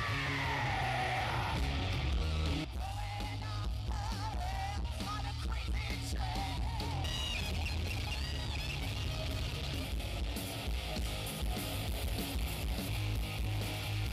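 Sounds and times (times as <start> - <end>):
people whooping: 0.0 - 1.6
crowd screaming and yelling at a tribute night: 0.0 - 14.1.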